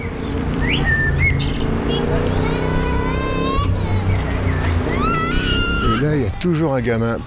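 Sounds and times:
birds chirping and singing in trills and whistles: 0:00.0 - 0:07.2
speech: 0:06.4 - 0:07.2.

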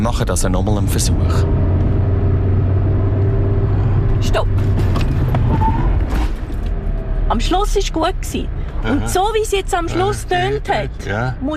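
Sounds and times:
speech: 0:00.0 - 0:01.8, 0:04.2 - 0:06.3, 0:07.3 - 0:11.5
car engine rumbling: 0:00.0 - 0:11.5
car emergency full braking with pulsing mechanical noise: 0:03.6 - 0:06.8.

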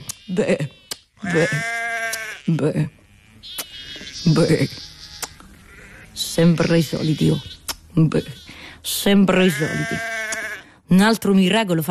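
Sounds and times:
speech: 0:00.3 - 0:01.8, 0:02.5 - 0:03.6, 0:04.2 - 0:04.9, 0:06.4 - 0:10.1, 0:10.9 - 0:11.8
sheep bleating: 0:01.2 - 0:03.4, 0:09.4 - 0:10.6.

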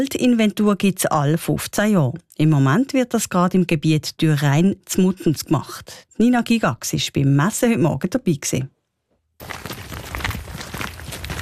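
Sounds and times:
speech: 0:00.0 - 0:08.8, 0:09.4 - 0:09.9
footsteps of two foresters in sturdy shoes crunching in a forest: 0:09.4 - 0:11.4.

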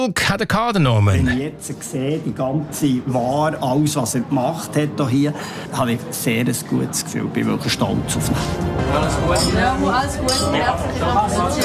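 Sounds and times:
speech: 0:00.0 - 0:11.6
lively crowd chattering: 0:02.3 - 0:11.6
glasses clinking in a toast: 0:09.3 - 0:10.8.

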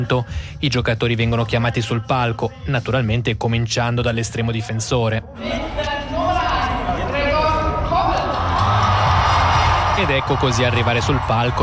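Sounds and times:
speech: 0:00.0 - 0:05.9, 0:10.0 - 0:11.6
large crowd applauding and cheering in a big venue: 0:06.6 - 0:11.6.

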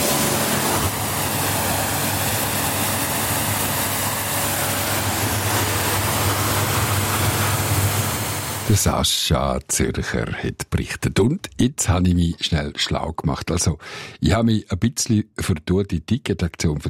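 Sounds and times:
low droning motor hum: 0:00.0 - 0:08.8
water spray hosing down a motorboat at a boatyard in Wallenstadt: 0:00.0 - 0:08.8
speech: 0:08.7 - 0:16.8.

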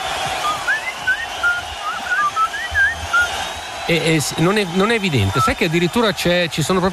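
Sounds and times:
person whistling a short lilting melody: 0:00.4 - 0:03.3
speech: 0:03.9 - 0:06.9.

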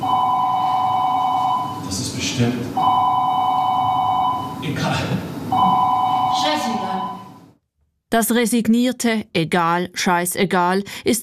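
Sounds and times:
electronic telephone ringing: 0:00.0 - 0:01.8, 0:02.8 - 0:04.6, 0:05.5 - 0:07.5
speech: 0:02.4 - 0:02.9, 0:08.1 - 0:11.2.

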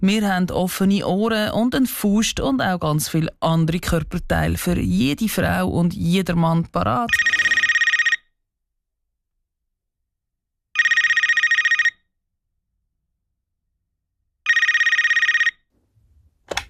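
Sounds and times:
speech: 0:00.0 - 0:07.4
telephone ringing in buzzing bursts: 0:06.9 - 0:08.3, 0:10.8 - 0:12.1, 0:14.4 - 0:15.7.

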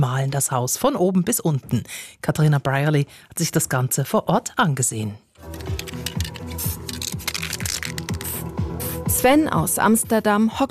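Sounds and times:
speech: 0:00.2 - 0:05.8, 0:09.2 - 0:10.6
spray paint can spraying on a house wall in Basel: 0:05.4 - 0:09.2
rhythmic music from a portable speaker: 0:05.4 - 0:10.6.

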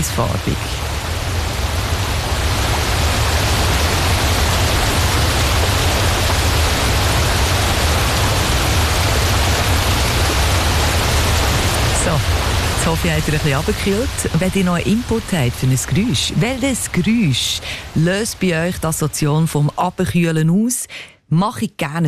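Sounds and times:
speech: 0:00.0 - 0:00.8, 0:12.2 - 0:22.0
waterfall roaring over cascades into a lake: 0:00.0 - 0:20.4.

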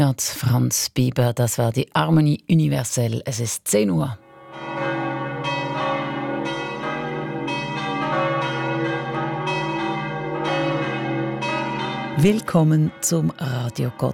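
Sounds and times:
speech: 0:00.0 - 0:04.2, 0:12.2 - 0:14.1
church bells of the Roman Catholic church of Sachseln pealing: 0:04.2 - 0:14.1.

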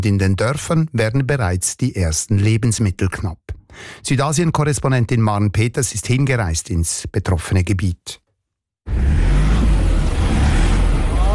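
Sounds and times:
speech: 0:00.0 - 0:08.2, 0:08.8 - 0:09.4
car engine roaring while accelerating on a narrow muddy road: 0:08.9 - 0:11.3.

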